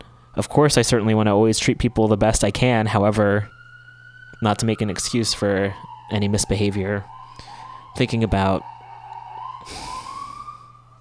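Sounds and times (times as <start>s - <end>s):
emergency vehicle sirens passing by: 0.0s - 11.0s
low constant hum: 0.0s - 11.0s
speech: 0.4s - 3.6s, 4.4s - 7.2s, 8.0s - 8.7s, 9.6s - 9.9s.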